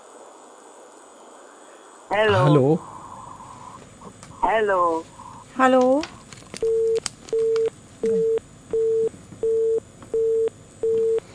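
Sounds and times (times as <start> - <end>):
faint hiss: 0.0 - 11.3
speech: 2.1 - 2.9, 4.5 - 8.3
phone busy tone after a caller's phone line cuts off: 6.6 - 11.2.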